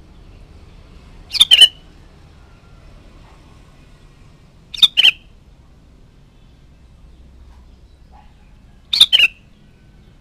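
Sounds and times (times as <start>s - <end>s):
Sooty-headed bulbul call: 1.3s - 1.8s, 4.7s - 5.3s, 8.2s - 9.5s.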